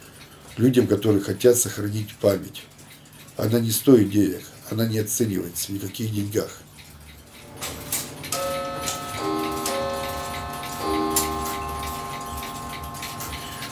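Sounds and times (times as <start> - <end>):
speech: 0.6 - 2.8, 3.4 - 6.7
mechanical clock ticking: 2.4 - 13.7
ringing metallic tones: 7.3 - 13.7.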